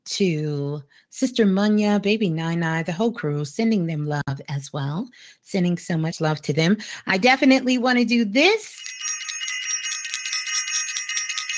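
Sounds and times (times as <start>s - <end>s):
speech: 0.1s - 9.1s
bright high-pitched bell ringing: 8.6s - 11.5s.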